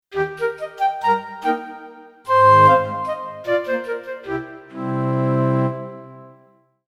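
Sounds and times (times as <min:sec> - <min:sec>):
solo flute: 0:00.1 - 0:06.4.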